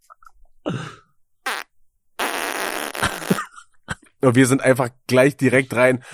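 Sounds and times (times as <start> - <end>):
fart sounds: 1.4 - 3.4
speech: 4.2 - 6.1.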